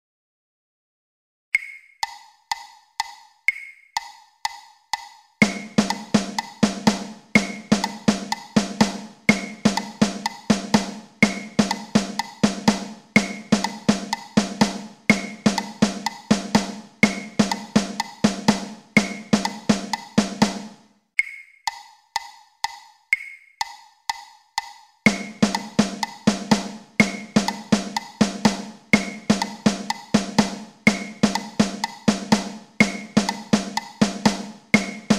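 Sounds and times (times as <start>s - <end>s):
metronome at 124 bpm: 1.6s - 10.6s, 13.2s - 14.4s, 17.0s - 18.4s, 19.0s - 20.3s, 21.2s - 26.4s, 27.0s - 30.2s, 30.9s - 34.1s, 34.7s - 35.1s
party dance rhythm mix at 124 bpm: 4.0s - 20.8s, 24.6s - 35.1s.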